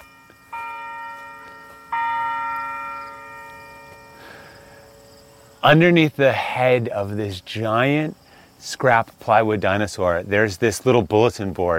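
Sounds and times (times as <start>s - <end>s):
resonant church bell strikes with long humming tone: 0.0s - 5.1s
speech: 5.6s - 11.7s.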